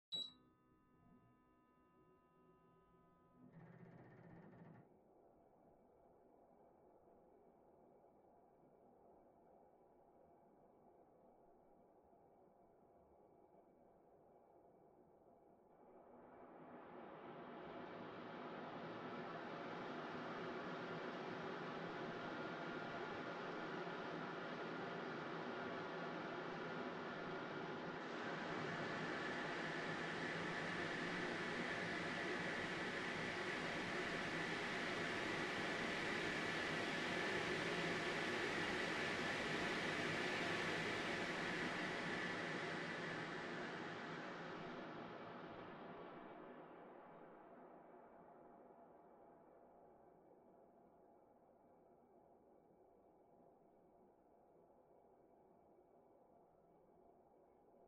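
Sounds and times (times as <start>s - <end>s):
air purifier: 15.9s - 48.2s.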